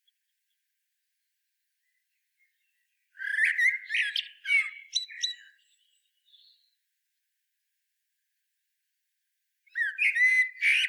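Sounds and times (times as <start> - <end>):
common blackbird Turdus merula singing a fluty warbled phrase: 2.4 - 6.7, 9.7 - 10.8.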